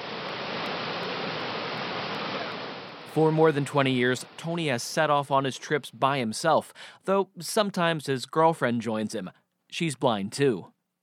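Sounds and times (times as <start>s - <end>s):
waterfall roaring: 0.0s - 5.1s
speech: 3.1s - 10.7s.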